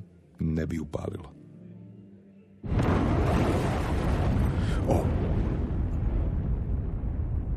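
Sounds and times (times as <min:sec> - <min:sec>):
speech: 0:00.6 - 0:01.4, 0:04.8 - 0:05.2
bomb explosion rumble in the next street: 0:02.7 - 0:07.5.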